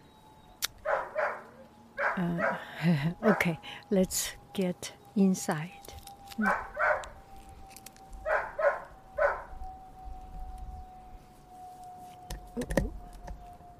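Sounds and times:
faint steady hum: 0.0 - 13.7
dog barking: 0.8 - 3.6, 6.4 - 7.1, 8.3 - 9.5
speech: 2.2 - 6.7.

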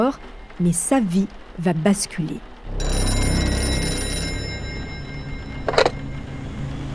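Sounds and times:
speech: 0.0 - 3.0
telephone ringing: 2.7 - 6.9.

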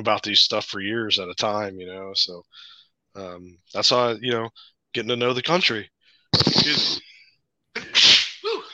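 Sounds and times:
speech: 0.0 - 7.1
person sneezing: 6.4 - 7.1, 7.8 - 8.7.

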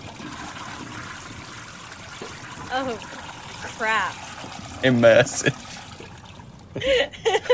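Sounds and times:
toilet flushing: 0.0 - 7.5
speech: 2.7 - 4.2, 4.8 - 5.6, 6.8 - 7.5.

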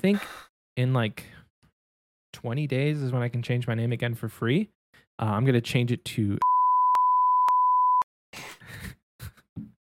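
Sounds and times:
speech: 0.0 - 1.4, 2.3 - 6.5
high censor beep over a spoken name: 6.4 - 8.1.

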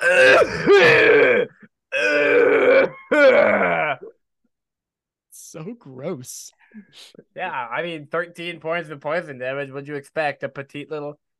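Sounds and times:
speech: 0.0 - 1.2, 5.6 - 11.3
voice imitating a bad coughing fit: 0.0 - 4.2.

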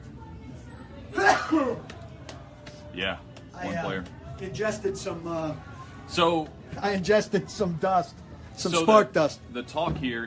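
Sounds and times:
person sneezing: 1.1 - 1.9
speech: 1.5 - 1.9, 3.0 - 10.2.

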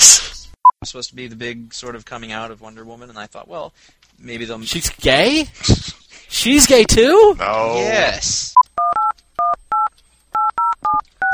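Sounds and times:
speech: 0.9 - 8.6
touch-tone telephone dialing beeps: 8.6 - 11.3.

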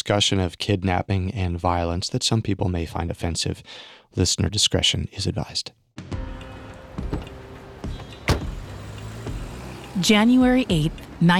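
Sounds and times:
speech: 0.1 - 6.1, 10.0 - 11.3
car door shutting: 6.7 - 9.4
low steady car engine hum: 6.7 - 11.2
man settling into car passenger seat with rustles and creaks: 6.9 - 8.7.

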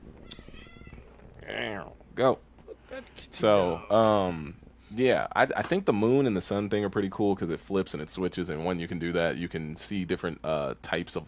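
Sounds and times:
pet cat meowing: 0.2 - 1.2
speech: 1.8 - 2.5, 3.4 - 11.2.

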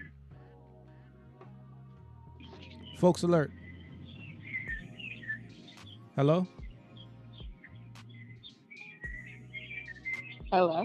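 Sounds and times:
birds chirping and tweeting: 2.4 - 10.8
speech: 3.0 - 3.6, 6.2 - 6.6, 10.5 - 10.8.

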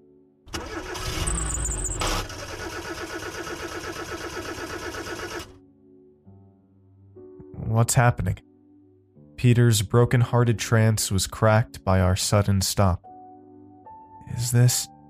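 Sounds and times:
old car engine struggling and stalling on incline: 0.5 - 5.5
speech: 7.8 - 8.5, 9.4 - 13.1, 14.3 - 15.0.

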